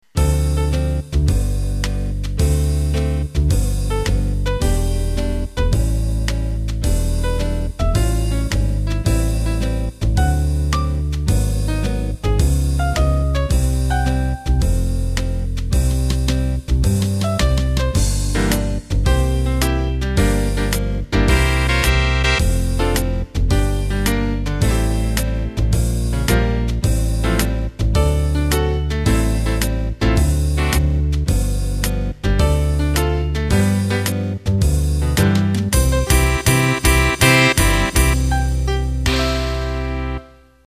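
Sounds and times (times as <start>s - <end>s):
acoustic bass playing cool jazz: 0.1s - 40.2s
saxes playing cool jazz: 21.3s - 22.4s, 35.8s - 40.4s
brushed drums playing cool jazz: 35.7s - 39.3s.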